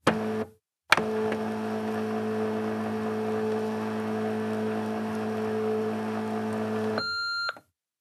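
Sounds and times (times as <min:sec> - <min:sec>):
office machine ambient: 0:00.0 - 0:07.1.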